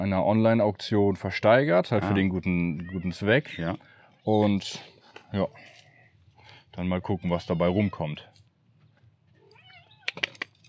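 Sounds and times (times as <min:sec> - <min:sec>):
speech: 0:00.0 - 0:05.8, 0:06.8 - 0:08.3
cat meowing softly: 0:02.5 - 0:03.8, 0:06.9 - 0:08.4, 0:09.4 - 0:10.4.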